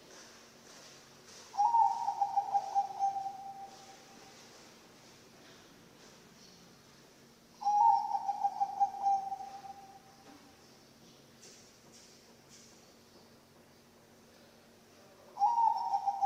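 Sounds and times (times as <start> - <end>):
Bangkok-type zebra dove cooing: 1.6 - 4.4, 7.6 - 10.1, 15.3 - 16.2.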